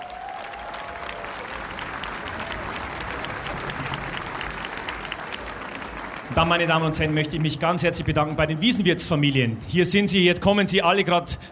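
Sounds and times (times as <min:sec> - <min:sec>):
large audience applause at an Oktoberfest open-air concert: 0:00.0 - 0:08.7
faint crowd murmur: 0:00.8 - 0:06.3
speech: 0:06.3 - 0:11.5.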